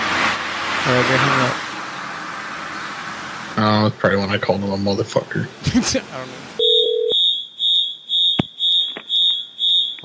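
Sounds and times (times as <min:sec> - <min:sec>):
speech: 0:00.8 - 0:01.6, 0:03.6 - 0:06.5
fire alarm beeping: 0:06.6 - 0:10.0
sharp clicks: 0:08.4 - 0:09.1.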